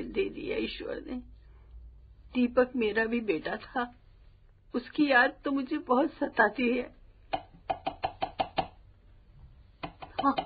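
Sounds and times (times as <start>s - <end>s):
speech: 0.2s - 1.4s, 2.3s - 4.0s, 4.7s - 7.0s, 10.2s - 10.4s
firm knocking on a door: 7.7s - 8.8s.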